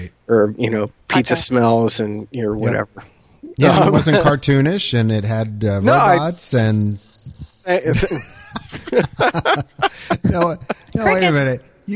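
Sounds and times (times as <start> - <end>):
short bursts of voices: 0.0 - 1.3, 2.6 - 7.0, 9.8 - 11.9
speech: 0.3 - 11.9
laughter: 3.6 - 7.0, 7.8 - 11.9
voice imitating a cricket's chirp: 4.7 - 8.6.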